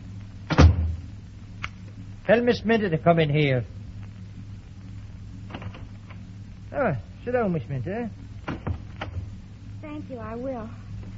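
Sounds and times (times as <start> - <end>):
low steady hum: 0.0 - 11.1
heavy door swinging and shutting as someone leaves: 0.5 - 1.0
speech: 2.3 - 3.8, 6.8 - 8.2, 9.8 - 10.8.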